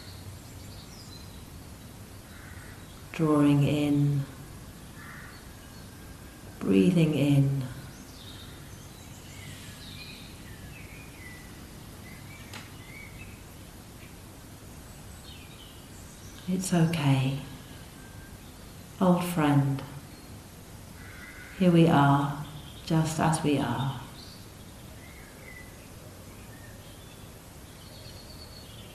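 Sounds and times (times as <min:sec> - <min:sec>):
steady hiss of wind or ambience: 0:00.0 - 0:28.9
bird cawing harshly outdoors: 0:02.3 - 0:02.9, 0:05.0 - 0:05.5, 0:21.0 - 0:21.6
speech: 0:03.2 - 0:04.4, 0:06.6 - 0:07.6, 0:16.5 - 0:17.5, 0:19.0 - 0:19.9, 0:21.6 - 0:24.0.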